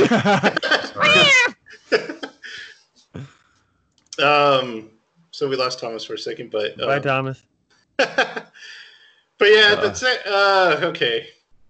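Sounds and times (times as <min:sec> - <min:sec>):
laughter: 0:00.0 - 0:03.3, 0:04.2 - 0:04.8, 0:08.0 - 0:08.8, 0:09.4 - 0:11.2
speech: 0:00.1 - 0:00.7, 0:04.2 - 0:08.8, 0:09.4 - 0:11.4
cats meowing, trying to get in: 0:00.7 - 0:01.7.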